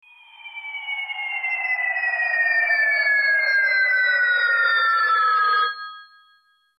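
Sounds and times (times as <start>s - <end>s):
warped ring ringtone: 0.0s - 6.7s.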